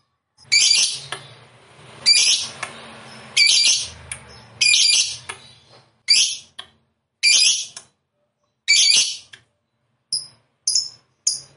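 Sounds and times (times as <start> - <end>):
fighter-type lovebird harsh high screeches: 0.5 - 1.0, 2.0 - 2.5, 3.4 - 3.9, 4.6 - 5.2, 6.1 - 6.5, 7.2 - 7.8, 8.7 - 9.3.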